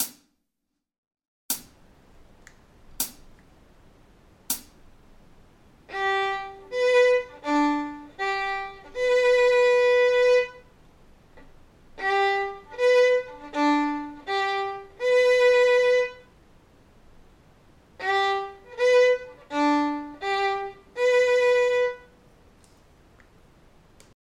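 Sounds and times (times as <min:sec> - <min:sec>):
G major arpeggio on a fiddle: 0:05.9 - 0:10.7, 0:12.0 - 0:16.3, 0:18.0 - 0:22.2.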